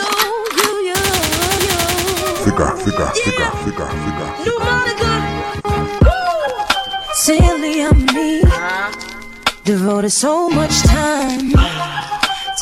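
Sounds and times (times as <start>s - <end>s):
music: 0.0s - 12.6s
gunshot sound effect in a rapid burst: 1.0s - 3.0s
speech: 2.5s - 6.0s, 7.2s - 12.2s.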